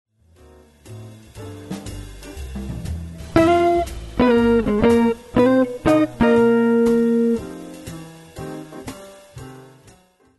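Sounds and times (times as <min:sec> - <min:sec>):
jazz blues guitar: 0:01.4 - 0:09.1.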